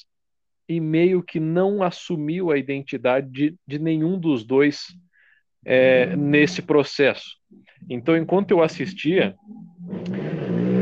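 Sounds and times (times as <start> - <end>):
speech: 0.7 - 10.3
motorcycle traffic passing: 9.8 - 10.8.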